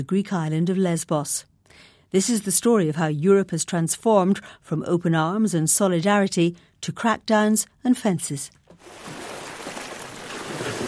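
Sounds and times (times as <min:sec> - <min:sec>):
speech: 0:00.0 - 0:09.2
sea waves washing at dusk on Lesbos: 0:08.8 - 0:10.8.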